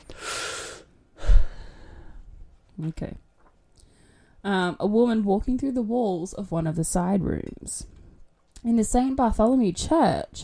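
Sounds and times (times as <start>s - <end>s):
deep breath: 0.0s - 2.3s, 3.8s - 4.4s
speech: 2.8s - 3.3s, 4.4s - 8.0s, 8.6s - 10.4s.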